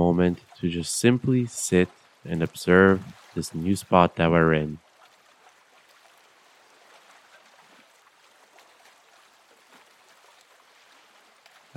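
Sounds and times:
speech: 0.0 - 4.8
gentle waves lapping at the shore of a calm lake: 0.0 - 11.7.

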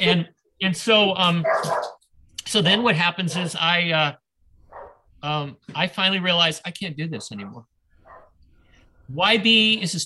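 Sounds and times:
speech: 0.0 - 4.2, 5.2 - 7.7, 9.1 - 10.0
female corgi barking in high yaps: 1.3 - 2.0, 3.3 - 3.6, 4.7 - 5.0, 7.2 - 8.4
corgi whiny drawn-out yelp: 1.4 - 2.0, 4.7 - 5.0, 7.3 - 8.3.

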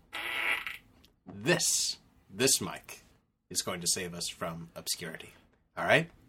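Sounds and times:
raspy fart sound effect from a button: 0.1 - 0.9
speech: 1.3 - 6.2.

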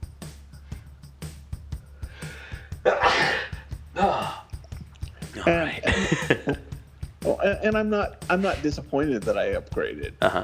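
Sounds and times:
breaths: 0.5 - 1.1, 1.8 - 5.3
loud sneeze: 2.2 - 4.6
laughter: 2.2 - 10.4
speech: 2.8 - 3.4, 5.4 - 6.7, 7.4 - 10.4.

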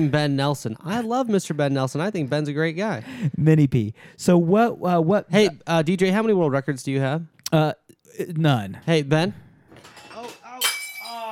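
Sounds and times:
speech: 0.0 - 9.4
wine glass shattering: 9.8 - 11.3.

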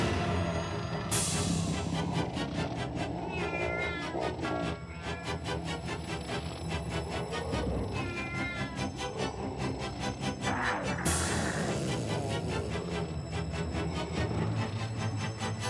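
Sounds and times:
steady backdrop of pulsing sound: 0.0 - 15.6
cat meowing and yowling in a commercial: 2.0 - 13.2.

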